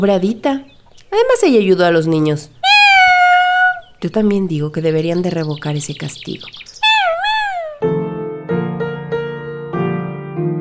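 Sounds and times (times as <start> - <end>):
speech: 0.0 - 2.6, 4.0 - 6.7
cat meowing: 2.6 - 3.8, 6.8 - 7.8
sustained piano-like notes struck: 7.8 - 10.6.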